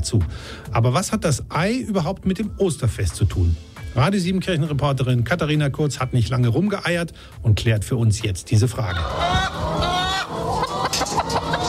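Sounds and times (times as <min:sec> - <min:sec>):
speech: 0:00.0 - 0:09.9
farm hens clucking and cackling: 0:08.8 - 0:11.6.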